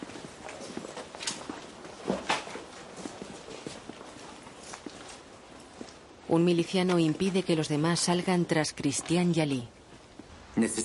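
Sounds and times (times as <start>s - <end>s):
footsteps crossing a courtyard: 0.0s - 6.1s, 9.8s - 10.5s
soft noise: 0.0s - 10.8s
speech: 6.3s - 9.8s, 10.6s - 10.8s.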